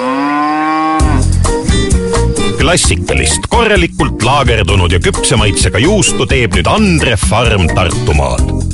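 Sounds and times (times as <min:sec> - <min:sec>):
cow mooing with a long low call: 0:00.0 - 0:02.6
bright full music with a strong beat: 0:01.0 - 0:08.7
speech: 0:02.7 - 0:08.7.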